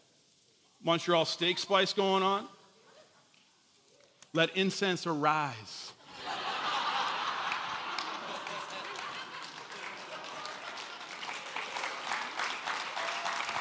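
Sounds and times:
speech: 0:00.8 - 0:02.6, 0:04.3 - 0:06.4
scattered laughter: 0:02.8 - 0:03.4, 0:06.0 - 0:11.6
cheers: 0:06.2 - 0:13.5
large crowd applauding: 0:06.2 - 0:13.5.

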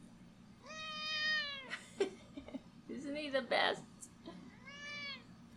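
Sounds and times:
cat meowing: 0:00.6 - 0:01.7, 0:04.6 - 0:05.3
speech: 0:03.3 - 0:03.9.

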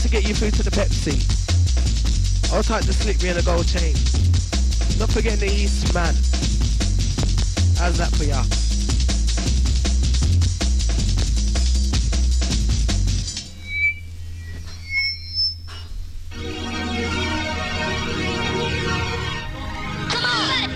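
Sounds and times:
dense music: 0:00.0 - 0:14.4, 0:16.1 - 0:20.7
speech: 0:00.1 - 0:04.4, 0:05.0 - 0:06.7, 0:07.8 - 0:08.6
low hum: 0:13.2 - 0:19.4
person whistling short high notes: 0:13.5 - 0:15.9.

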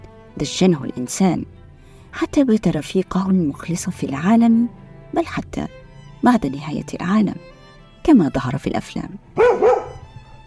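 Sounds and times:
speech: 0:00.4 - 0:09.8
dog barking: 0:09.4 - 0:10.1.

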